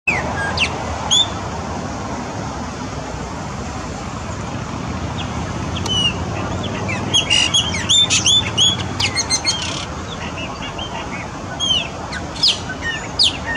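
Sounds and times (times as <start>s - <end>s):
Chopi blackbird singing: 0.1s - 1.4s, 5.1s - 13.5s
constant low background noise: 0.1s - 13.5s.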